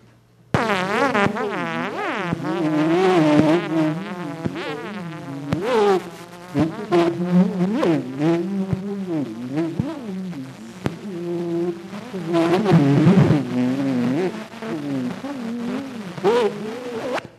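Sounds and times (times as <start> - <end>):
tuning fork buzzing drone: 0.6 - 17.2.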